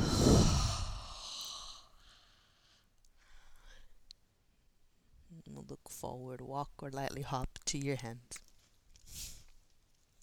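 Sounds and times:
long forceful exhale through the mouth during a yoga sequence: 0:00.0 - 0:02.8
softer quieter breathing: 0:00.0 - 0:04.1
speech: 0:05.7 - 0:08.4.

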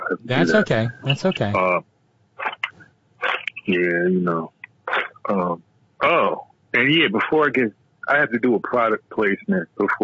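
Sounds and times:
speech: 0:00.1 - 0:01.9, 0:03.7 - 0:04.6, 0:05.3 - 0:10.0
person clearing throat: 0:04.9 - 0:06.4.

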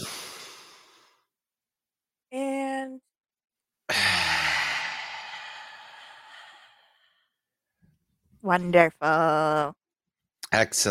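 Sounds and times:
deep breath in: 0:00.0 - 0:01.2, 0:03.9 - 0:07.4
speech: 0:08.4 - 0:09.8, 0:10.5 - 0:10.9.

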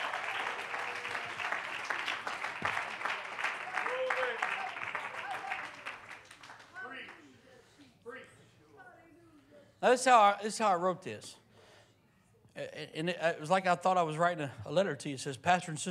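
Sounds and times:
audience clapping: 0:00.0 - 0:07.3
speech: 0:09.8 - 0:11.4, 0:12.6 - 0:15.8.

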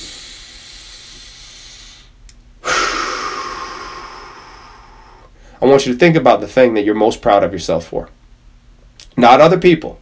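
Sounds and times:
deep breath: 0:00.0 - 0:05.6
speech: 0:05.6 - 0:08.2, 0:09.2 - 0:10.0.

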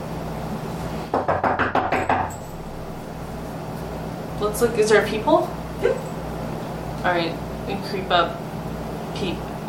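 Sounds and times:
low steady hum: 0:00.0 - 0:09.6
firm knocks on a door: 0:01.1 - 0:02.4
speech: 0:04.4 - 0:06.1, 0:07.0 - 0:08.4, 0:09.2 - 0:09.5.

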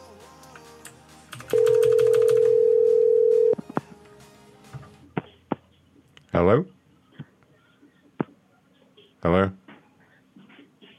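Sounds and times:
telephone tone on a disconnected phone line: 0:01.5 - 0:03.6
speech: 0:06.4 - 0:06.7, 0:09.2 - 0:09.6.

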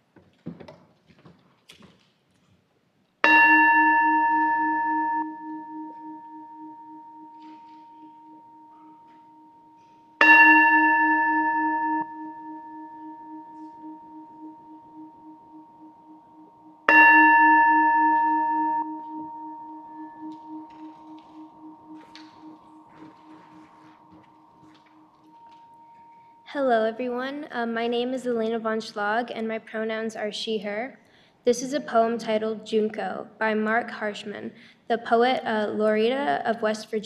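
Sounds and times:
bell rung to call to worship: 0:03.2 - 0:27.0
speech: 0:26.6 - 0:37.0.

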